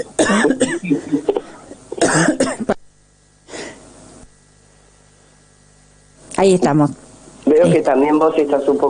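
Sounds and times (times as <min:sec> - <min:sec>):
person coughing: 0:00.0 - 0:02.8
speech: 0:06.4 - 0:07.0, 0:07.6 - 0:08.8.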